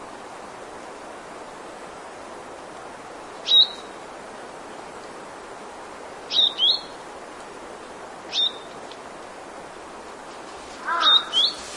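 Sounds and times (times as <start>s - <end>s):
background hiss: 0.0s - 11.7s
brown vermilion bird calling in short high chirps: 3.4s - 3.9s, 6.3s - 7.0s, 8.3s - 8.8s, 10.9s - 11.7s.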